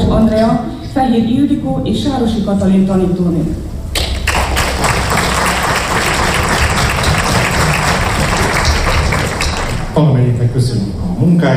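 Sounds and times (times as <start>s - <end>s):
speech: 0.2s - 3.7s, 10.0s - 11.5s
audience applauding: 4.0s - 10.0s.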